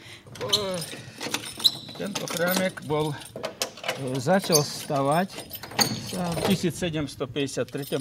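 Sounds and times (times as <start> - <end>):
old wooden church door creaking open: 0.3 - 6.7
speech: 2.0 - 3.4, 4.0 - 7.9.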